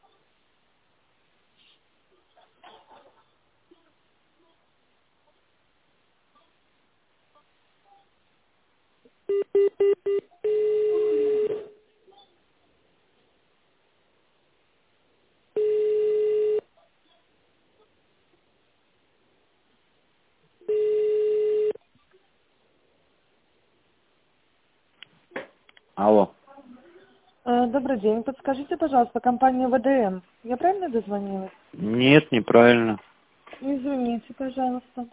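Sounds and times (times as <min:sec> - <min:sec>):
office phone line ringing tones: 0:09.3 - 0:11.7, 0:15.6 - 0:16.7, 0:20.6 - 0:21.8
speech: 0:26.0 - 0:26.4, 0:27.6 - 0:35.1.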